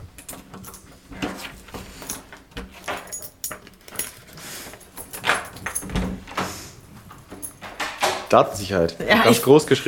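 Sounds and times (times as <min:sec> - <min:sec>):
keys jangling: 0:02.0 - 0:06.0, 0:07.3 - 0:07.8
speech: 0:08.3 - 0:09.8.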